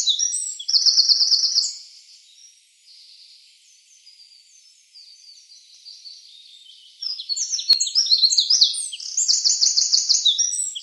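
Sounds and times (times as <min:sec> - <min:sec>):
Eurasian wren trilling and twittering: 0:00.0 - 0:01.8, 0:05.1 - 0:10.8.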